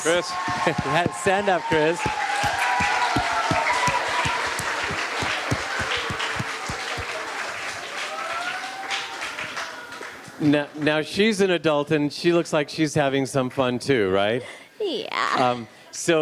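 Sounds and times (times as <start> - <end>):
speech: 0.0 - 2.3, 10.4 - 16.2
crowd applauding: 0.0 - 10.9
sharp individual claps: 0.3 - 10.1.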